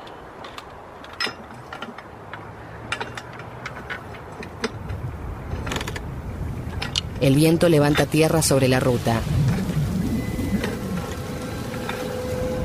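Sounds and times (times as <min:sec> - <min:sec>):
L-wrench tightening bolts: 0:00.0 - 0:06.1
low outdoor rumble: 0:00.0 - 0:12.6
speech: 0:07.2 - 0:09.4.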